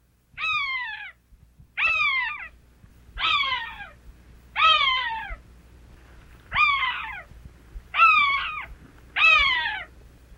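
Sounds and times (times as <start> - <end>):
Cooper's hawk wailing calls: 0.4 - 1.2, 1.8 - 2.6, 3.2 - 4.0, 4.6 - 5.4, 6.5 - 7.3, 7.9 - 9.9.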